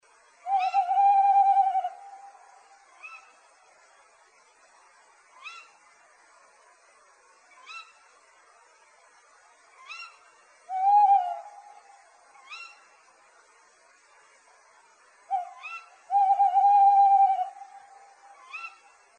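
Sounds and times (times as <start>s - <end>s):
tawny owl calling: 0.4s - 3.4s, 5.4s - 5.8s, 7.6s - 8.0s, 9.8s - 12.9s, 15.3s - 19.0s.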